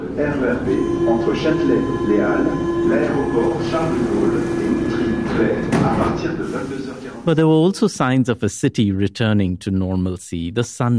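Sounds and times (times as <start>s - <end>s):
sustained metro train motor whine: 0.0s - 6.1s
Paris metro train rumbling in motion heard from inside the car: 0.0s - 7.3s
speech: 0.2s - 10.9s.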